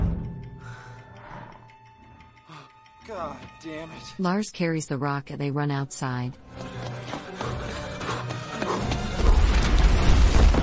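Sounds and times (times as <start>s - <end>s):
speech: 3.1s - 6.9s
crackling, crashing debris from an explosion in a building: 9.2s - 10.6s.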